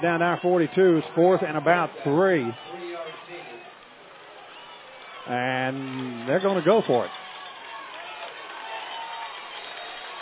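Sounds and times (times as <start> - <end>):
speech: 0.0 - 2.7, 5.3 - 7.2
large outdoor football crowd roaring and cheering: 0.0 - 10.1.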